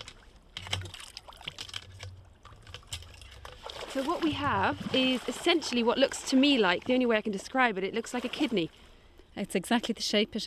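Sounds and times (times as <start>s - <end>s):
river water splashing and sloshing as freshwater mussel lifted by hand: 0.0s - 10.0s
speech: 4.0s - 8.8s, 9.4s - 10.4s.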